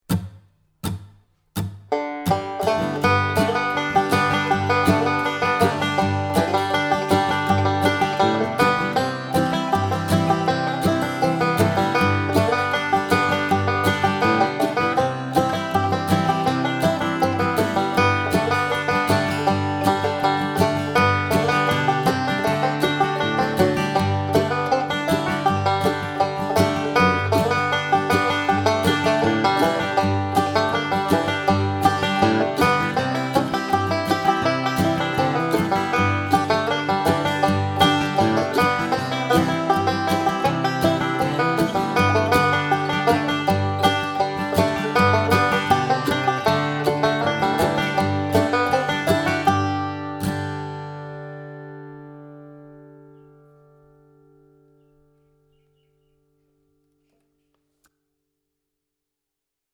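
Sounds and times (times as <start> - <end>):
banjo playing in a banjo lesson: 0.1 - 53.3.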